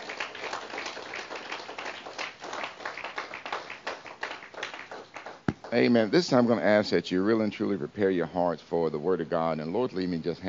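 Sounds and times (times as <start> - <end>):
audience clapping hands: 0.0 - 5.9
speech: 5.7 - 10.4.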